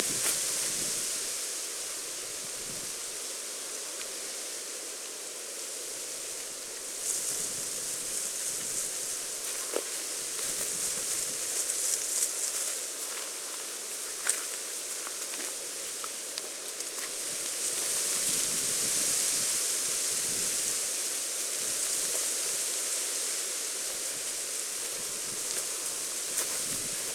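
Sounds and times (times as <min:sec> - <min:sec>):
grass ambience: 0:00.0 - 0:27.1.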